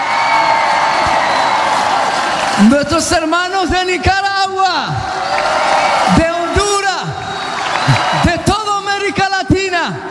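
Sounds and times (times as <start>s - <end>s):
whoops and shouts: 0.0s - 2.0s, 5.0s - 8.6s
large crowd clapping: 0.0s - 4.3s, 4.9s - 9.3s
large crowd cheering for Mexico: 0.0s - 10.0s
speech: 2.6s - 6.4s.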